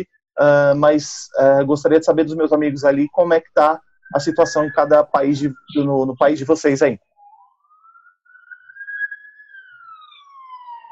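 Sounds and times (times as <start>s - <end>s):
speech: 0.0s - 7.1s
ambulance siren wailing: 2.2s - 10.8s.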